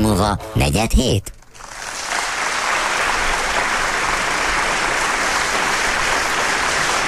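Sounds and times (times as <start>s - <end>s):
speech: 0.2s - 1.4s
crowd applauding: 1.5s - 7.0s.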